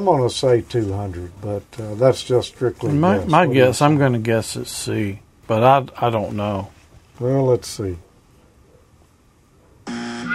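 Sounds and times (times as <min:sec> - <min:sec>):
speech: 0:00.0 - 0:08.1
quiz-show buzzer signalling a correct answer: 0:09.9 - 0:10.3.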